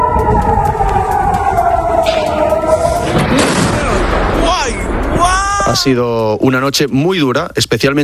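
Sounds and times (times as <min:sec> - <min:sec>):
broad crackling burst of blasts from cluster warheads: 0:00.0 - 0:05.9
explosions from a barrage of missiles with cluster warheads over Israel: 0:02.0 - 0:06.0
speech: 0:05.8 - 0:08.0.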